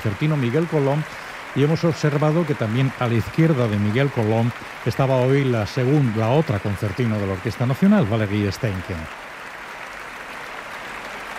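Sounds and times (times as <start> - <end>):
speech: 0.0 - 9.2
concert audience applause and ovation for a symphony orchestra: 0.0 - 11.3.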